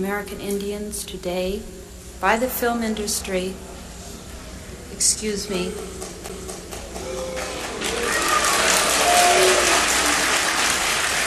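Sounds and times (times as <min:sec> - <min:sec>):
speech: 0:00.0 - 0:03.8, 0:05.0 - 0:06.4
audience applause: 0:05.9 - 0:11.2.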